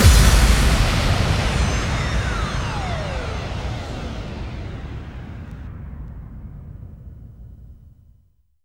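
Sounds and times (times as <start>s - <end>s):
bass drum effect kicks: 0.0s - 5.9s.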